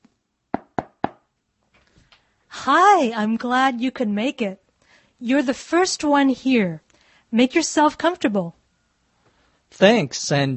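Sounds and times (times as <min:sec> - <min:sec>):
firm knocking on a door: 0:00.6 - 0:01.2
speech: 0:02.6 - 0:04.6, 0:05.2 - 0:08.6, 0:09.7 - 0:10.5.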